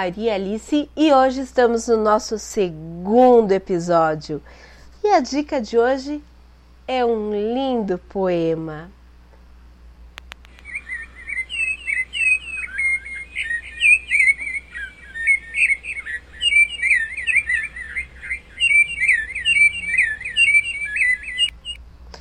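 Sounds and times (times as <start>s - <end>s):
speech: 0.0s - 6.3s, 6.9s - 9.0s
faint low hum: 0.0s - 22.2s
sabiá thrush singing warbling whistled phrases: 10.5s - 21.8s.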